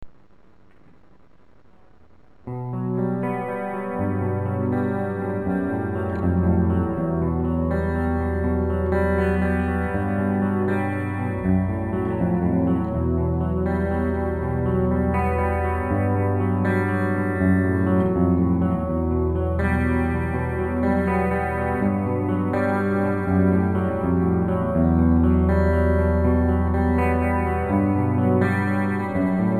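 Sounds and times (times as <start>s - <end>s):
slow acoustic music: 2.5s - 29.5s.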